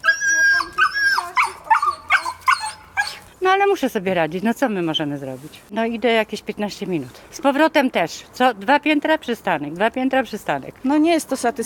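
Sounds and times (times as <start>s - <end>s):
two small dogs whining high-pitched: 0.0s - 3.3s
speech: 3.6s - 11.6s.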